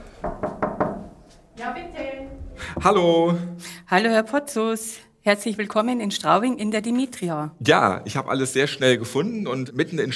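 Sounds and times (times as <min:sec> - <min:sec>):
knocking on an office door: 0:00.2 - 0:01.2
speech: 0:02.7 - 0:10.1.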